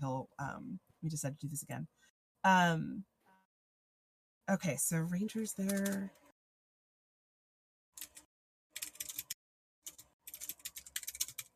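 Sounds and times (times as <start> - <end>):
speech: 0.0 - 3.1, 4.5 - 6.2
clicky computer keyboard typing: 5.6 - 6.1, 8.0 - 11.5.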